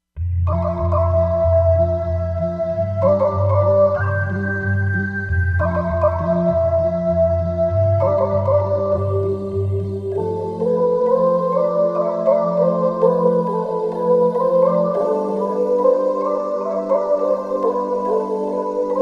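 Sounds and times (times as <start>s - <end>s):
percussion voice on Korg MSC-07S synth: 0.2s - 19.0s.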